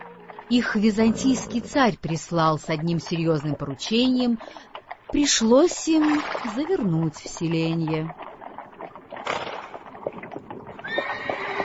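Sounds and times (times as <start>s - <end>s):
clip-clop of hooves of a mounted band with a chariot: 0.0s - 11.6s
tired horses neighing and whinnying: 0.2s - 2.0s, 10.0s - 11.6s
speech: 0.5s - 8.2s.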